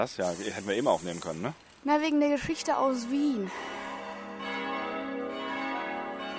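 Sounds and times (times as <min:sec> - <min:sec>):
speech: 0:00.0 - 0:03.8
church bell ringing: 0:02.5 - 0:06.3.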